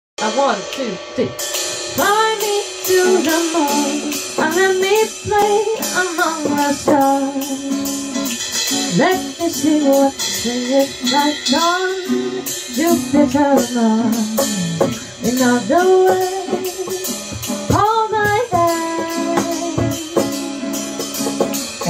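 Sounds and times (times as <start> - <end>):
latin jazz band playing: 1.4 - 21.8.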